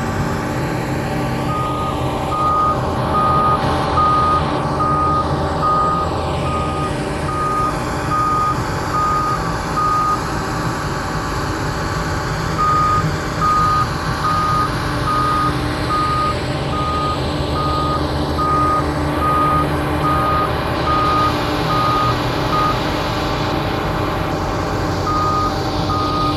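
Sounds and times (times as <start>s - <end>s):
heavy demolition machinery rumbling and grinding at a pier: 0.0s - 26.3s
vehicle reversing beep: 1.5s - 10.3s, 12.6s - 22.9s, 25.0s - 26.3s.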